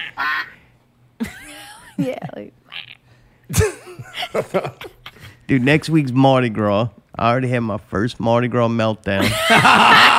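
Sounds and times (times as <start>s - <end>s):
person imitating duck or goose quacks: 0.0s - 0.6s, 2.7s - 3.0s
speech: 2.0s - 2.6s, 3.5s - 4.9s, 5.5s - 10.1s
laughter: 3.5s - 5.3s, 9.2s - 10.1s.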